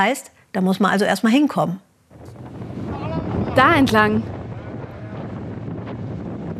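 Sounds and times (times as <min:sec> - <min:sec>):
speech: 0:00.0 - 0:02.5, 0:03.6 - 0:04.4
strong wind at sea buffeting the microphone: 0:02.1 - 0:06.5.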